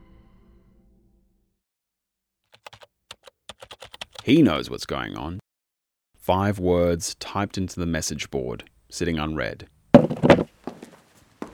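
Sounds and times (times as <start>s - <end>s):
speech: 4.2s - 5.4s, 6.3s - 9.8s
wooden thunks of someone getting up out of a chair in a cabin: 10.0s - 10.9s
soft light footstep knocks: 10.0s - 11.5s.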